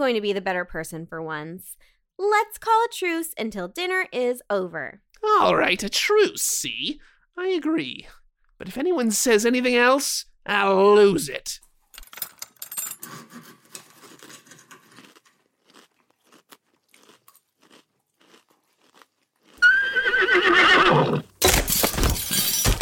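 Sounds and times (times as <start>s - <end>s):
speech: 0.0s - 11.6s
soft crunching and chewing noises: 13.6s - 19.7s
horse neighing: 19.6s - 21.4s.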